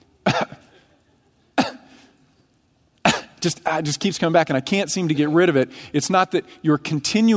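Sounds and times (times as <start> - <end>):
harsh hacking coughs: 0.2 - 1.0, 1.6 - 2.1, 3.0 - 3.4
speech: 3.4 - 7.3.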